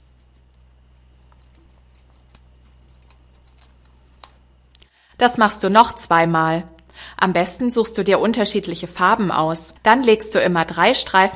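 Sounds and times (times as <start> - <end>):
scissors cutting a sponge into strips: 0.0 - 4.4
steady low hum: 0.0 - 11.3
speech: 5.2 - 11.3.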